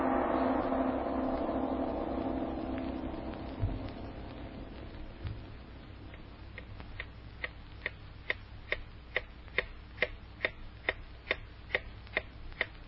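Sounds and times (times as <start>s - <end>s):
quiet low hum: 0.0s - 12.8s
clock ticking: 6.1s - 12.8s.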